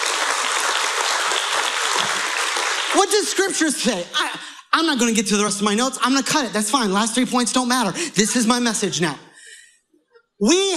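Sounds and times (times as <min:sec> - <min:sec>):
church congregation applauding: 0:00.0 - 0:04.1
speech: 0:03.0 - 0:09.3, 0:10.4 - 0:10.7.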